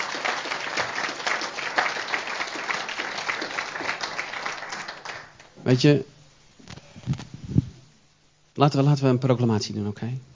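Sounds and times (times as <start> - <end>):
audience applauding: 0.0 - 5.5
speech: 5.6 - 6.1, 8.6 - 10.3.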